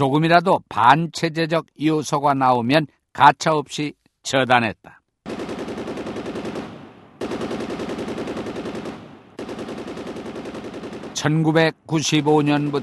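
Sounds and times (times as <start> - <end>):
speech: 0.0 - 5.0, 11.2 - 12.8
machine gun fire: 5.2 - 11.5, 12.2 - 12.8.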